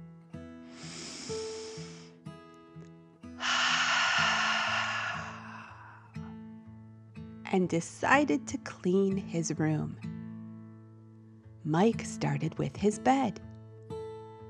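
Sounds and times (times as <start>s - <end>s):
deep breath in and out: 0.6s - 2.2s, 3.4s - 6.3s
speech: 7.5s - 10.1s, 11.7s - 13.5s.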